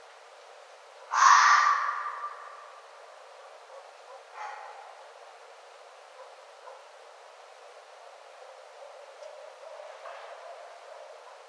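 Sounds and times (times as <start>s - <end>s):
red fox harsh rasping bark: 1.0s - 2.8s, 3.4s - 5.2s, 6.1s - 7.0s, 8.8s - 11.4s.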